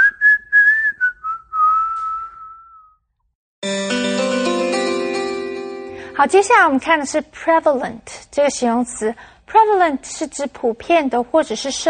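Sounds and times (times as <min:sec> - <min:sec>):
person whistling bright chirps: 0:00.0 - 0:03.1
instrumental music: 0:03.6 - 0:06.6
speech: 0:06.2 - 0:11.8.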